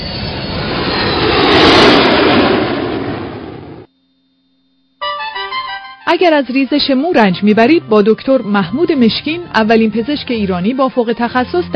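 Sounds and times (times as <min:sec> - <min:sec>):
passenger airliner in flight engine roar: 0:00.0 - 0:03.9
speech: 0:06.1 - 0:11.7.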